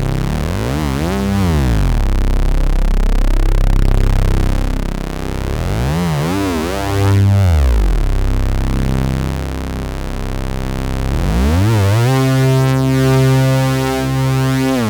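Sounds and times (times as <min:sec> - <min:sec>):
MemoryMoog synthesizer unison glide: 0:00.1 - 0:14.8.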